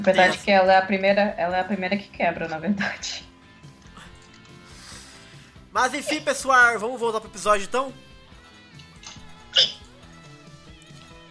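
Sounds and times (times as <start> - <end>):
speech: 0.0 - 3.3, 5.8 - 8.1
hiccup: 9.5 - 9.9.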